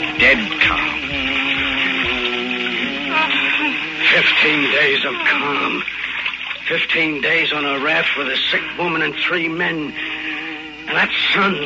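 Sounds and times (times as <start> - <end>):
man humming a slow wandering tune in a low voice: 0.0 - 5.9, 8.5 - 11.6
steady hiss: 0.0 - 11.6
speech: 0.2 - 1.4, 4.2 - 6.0, 6.7 - 10.2, 10.9 - 11.6.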